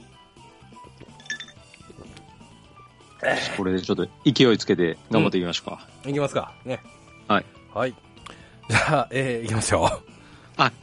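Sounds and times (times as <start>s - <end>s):
quiet music: 0.0s - 10.8s
glasses of red wine and beer clinking in a toast: 1.0s - 1.7s
speech: 3.2s - 8.1s, 8.7s - 10.8s.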